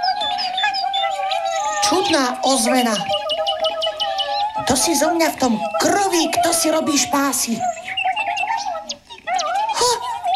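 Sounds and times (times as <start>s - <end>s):
pigeon chicks chirping in a nest: 0.0s - 10.3s
speech: 1.9s - 3.2s, 4.6s - 7.8s.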